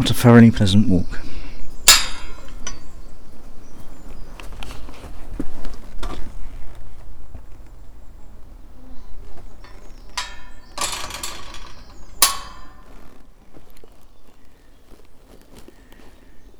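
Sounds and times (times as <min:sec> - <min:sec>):
speech: 0:00.2 - 0:01.3
train clanks and knocks: 0:01.9 - 0:03.1, 0:09.6 - 0:13.0
train chugging along the Paignton to Kingswear Railway line: 0:09.7 - 0:12.8.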